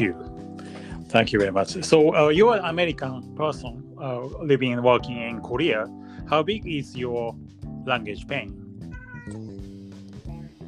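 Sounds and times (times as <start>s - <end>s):
speech: 0.0s - 0.4s, 1.1s - 8.6s
cat meowing insistently: 8.9s - 9.5s.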